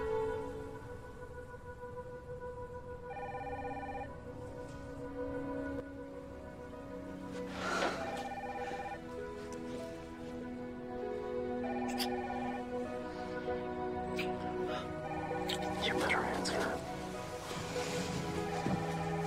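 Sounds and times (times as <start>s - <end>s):
sustained tones: 0.0s - 19.2s
electronic telephone ringing: 3.1s - 4.1s, 8.1s - 9.0s.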